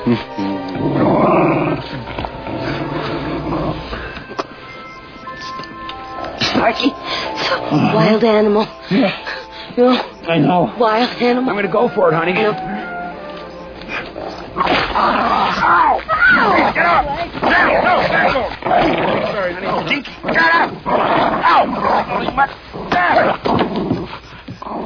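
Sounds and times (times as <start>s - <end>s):
speech: 0.0s - 3.0s, 6.7s - 12.7s, 14.6s - 23.9s
dog barking and yipping with excited yelps and whines: 13.9s - 23.4s.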